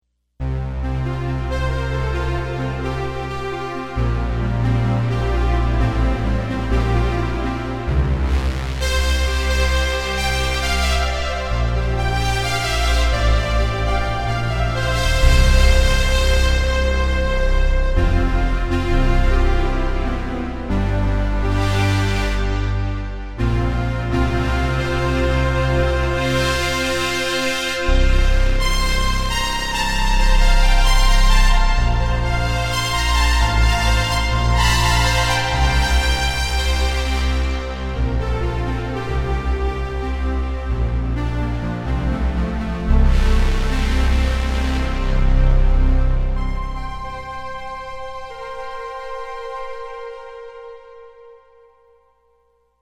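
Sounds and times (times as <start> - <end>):
Jupiter-8 synthesizer strings: 0.4 - 51.0.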